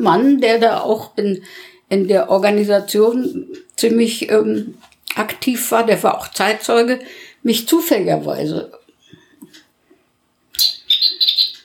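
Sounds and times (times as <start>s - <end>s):
speech: 0.0s - 8.8s, 10.6s - 10.8s
recorded birdsong from a chiming clock: 10.6s - 11.6s.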